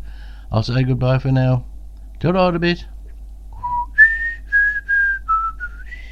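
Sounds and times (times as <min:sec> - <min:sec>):
speech: 0:00.5 - 0:02.9
person whistling a melody: 0:03.6 - 0:06.0.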